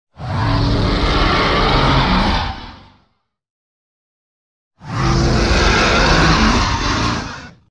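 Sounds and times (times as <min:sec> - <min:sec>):
dragon fireball roar: 0:00.2 - 0:03.0, 0:04.8 - 0:07.6.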